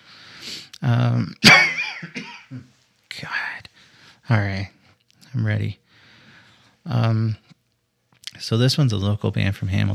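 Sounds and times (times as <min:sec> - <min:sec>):
speech: 0:00.8 - 0:03.4, 0:04.3 - 0:05.8, 0:06.9 - 0:07.5, 0:08.4 - 0:09.9
harsh throaty coughing fit: 0:01.4 - 0:02.7.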